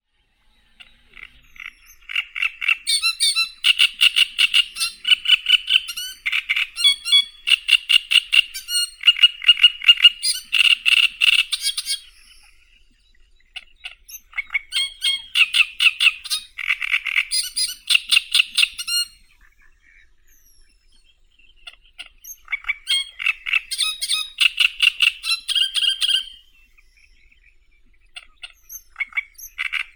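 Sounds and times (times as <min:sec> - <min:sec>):
great reed warbler Acrocephalus arundinaceus: 0:00.4 - 0:29.9.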